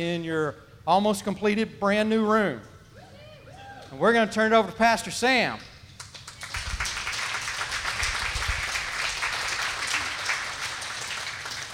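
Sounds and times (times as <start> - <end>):
speech: 0.0 - 2.7, 3.9 - 5.7
crowd applauding: 6.0 - 11.7.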